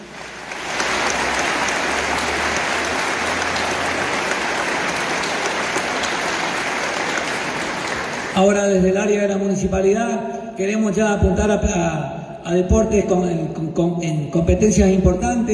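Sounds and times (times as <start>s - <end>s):
crowd applauding for people who excelled in sports: 0.0s - 8.6s
speech: 8.4s - 15.5s.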